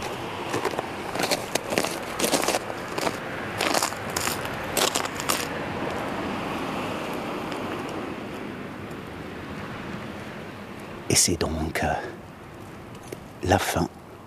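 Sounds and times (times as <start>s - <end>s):
crisp crunches and crackles on ice: 0.0s - 6.0s
passing traffic on an icy winter village street: 0.0s - 14.2s
speech: 11.2s - 12.2s, 13.4s - 13.9s.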